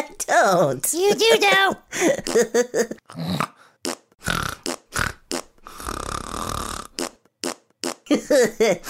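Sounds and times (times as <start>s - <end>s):
speech: 0.2s - 3.5s, 8.1s - 8.8s
voice imitating small popping farts: 3.1s - 8.1s.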